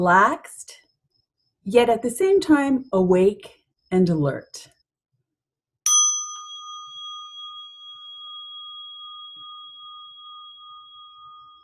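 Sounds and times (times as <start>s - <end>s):
speech: 0.0s - 0.8s, 1.6s - 4.7s
meditation bell ringing: 5.9s - 11.6s.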